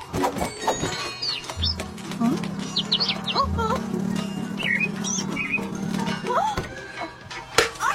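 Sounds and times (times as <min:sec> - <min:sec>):
birds chirping and tweeting: 0:00.7 - 0:07.2.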